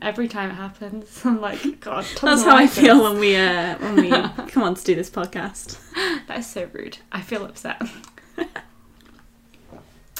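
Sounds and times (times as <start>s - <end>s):
speech: 0.0s - 8.5s
laughter: 1.4s - 4.9s, 7.8s - 8.7s
person gulping a drink of tea: 9.0s - 9.3s.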